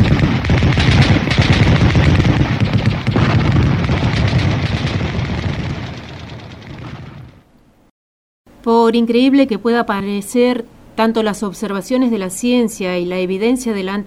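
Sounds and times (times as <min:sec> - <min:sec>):
dense gunfire in a radio drama: 0:00.0 - 0:07.5
speech: 0:08.9 - 0:14.0.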